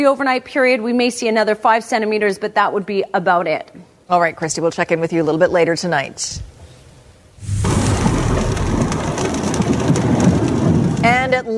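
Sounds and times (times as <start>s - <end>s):
speech: 0.0s - 6.5s, 11.0s - 11.5s
heavy rain pouring down with a low rumbling undertone: 7.4s - 11.5s.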